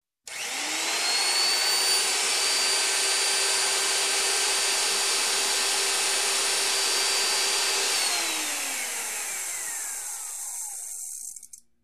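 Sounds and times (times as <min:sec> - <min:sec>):
electric cutter rolling: 0:00.3 - 0:11.6.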